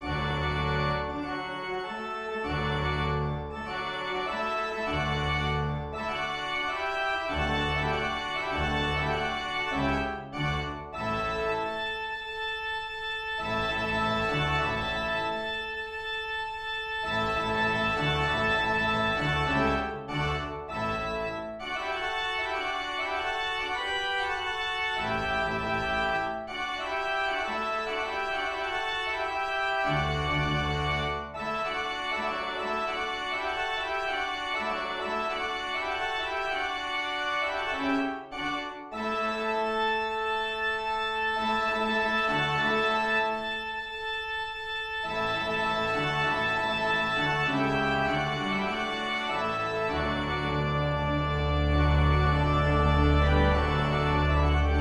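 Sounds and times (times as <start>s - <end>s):
organ fanfare: 0.0s - 54.7s.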